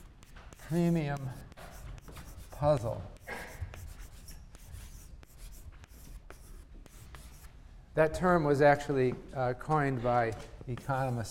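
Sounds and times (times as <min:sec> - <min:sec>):
marker or chalk writing on a board during a lecture: 0:00.0 - 0:07.5, 0:10.7 - 0:11.2
speech: 0:00.7 - 0:01.5, 0:02.6 - 0:03.2, 0:08.0 - 0:11.2.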